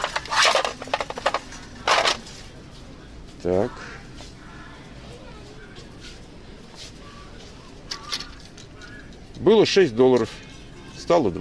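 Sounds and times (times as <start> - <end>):
party tableware with an American flag design clattering and rustling: 0.0 - 2.3
speech: 3.4 - 4.0, 9.4 - 10.4, 11.1 - 11.4.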